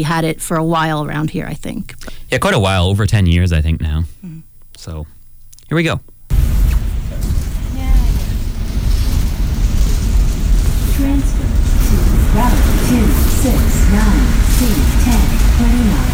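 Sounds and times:
speech: 0.0 - 6.4, 13.4 - 16.1
automated bus stop announcement inside a moving bus: 6.3 - 16.1
bus engine rumble and road noise: 6.3 - 16.1.

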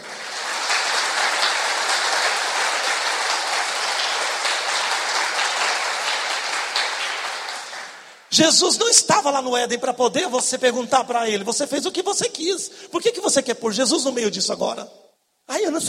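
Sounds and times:
audience applause: 0.0 - 8.3
speech: 8.4 - 15.0, 15.7 - 15.8.

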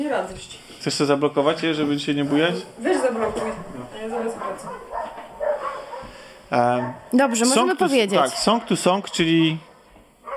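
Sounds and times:
speech: 0.0 - 5.0, 6.5 - 9.7
dog barking: 2.9 - 10.3.

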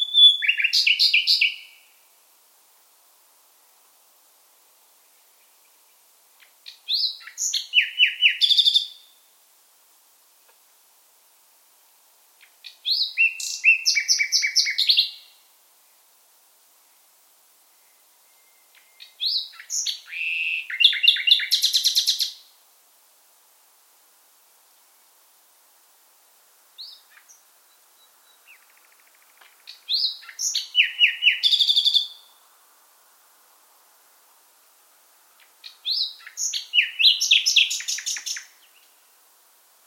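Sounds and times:
nightingale Luscinia megarhynchos singing: 0.0 - 2.0, 5.0 - 9.3, 12.4 - 15.5, 17.7 - 22.6, 26.8 - 32.6, 35.4 - 39.2.

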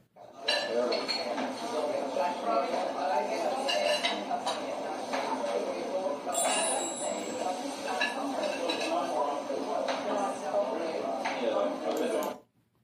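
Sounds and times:
murmur of many indistinct voices: 0.2 - 12.4
sharper clatters of dishes: 0.4 - 1.6, 3.5 - 5.6, 6.3 - 9.2
dishes and cutlery clinking in a busy restaurant: 0.4 - 2.0, 2.6 - 5.7, 6.3 - 10.2.

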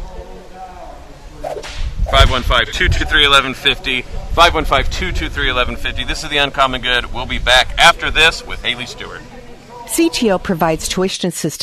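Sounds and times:
whip crack sound effect: 1.4 - 2.2
brief swishing rush of air: 1.4 - 2.5
speech: 2.3 - 9.3, 9.9 - 11.6.

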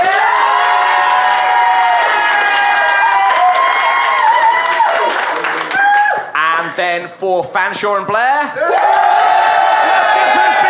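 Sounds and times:
audience clapping: 0.0 - 6.0
audience cheering and whooping: 0.0 - 6.3, 8.6 - 10.6
speech: 6.8 - 9.0.

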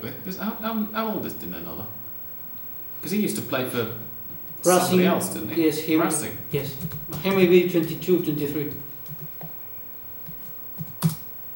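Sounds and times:
speech: 0.2 - 2.0, 3.0 - 4.0, 4.6 - 8.9
computer keyboard being typed on: 9.0 - 9.5, 10.3 - 11.2.

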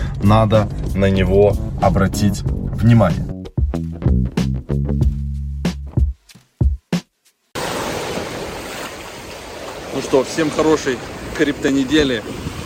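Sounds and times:
punchy music: 0.0 - 7.4
speech: 0.2 - 3.3, 10.0 - 12.5
sea surf washing against the shore: 7.6 - 12.6.

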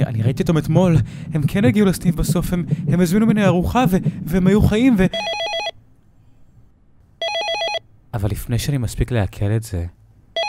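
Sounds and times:
faint hum: 0.0 - 10.4
speech: 0.3 - 5.4, 8.2 - 10.0
electronic drive-thru intercom bell ringing: 7.2 - 7.8.

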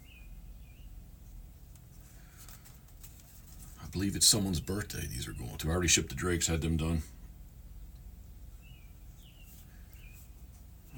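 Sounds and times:
faint bird chirps: 0.0 - 1.0, 8.5 - 10.9
speech: 4.0 - 7.2.

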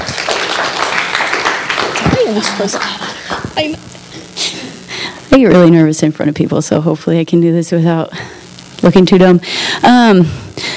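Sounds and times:
crowd applauding a speaker: 0.0 - 3.7
voices calling out and cheering: 0.0 - 3.7
speech: 2.3 - 4.0, 5.3 - 10.7.

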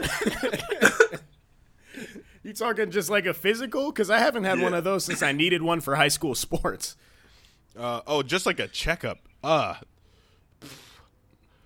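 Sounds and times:
person coughing in rough bursts: 0.0 - 1.3, 4.5 - 5.4
speech: 0.1 - 0.9, 2.6 - 7.2, 7.8 - 9.9, 10.6 - 10.8.

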